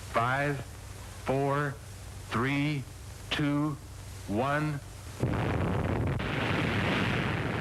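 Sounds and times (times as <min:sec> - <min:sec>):
speech: 0:00.2 - 0:05.5
underwater nuclear bomb test explosion: 0:05.2 - 0:07.5.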